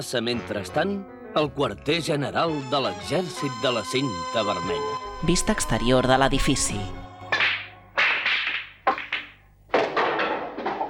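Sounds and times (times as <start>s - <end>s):
speech: 0.0s - 7.0s
billiard break shot balls colliding: 7.2s - 10.8s.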